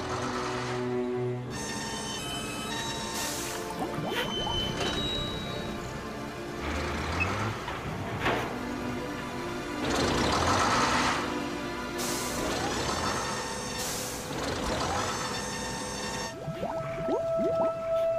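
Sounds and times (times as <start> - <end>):
crane hauling a tractor out of water, heavy machinery drone: 0.0 - 18.0.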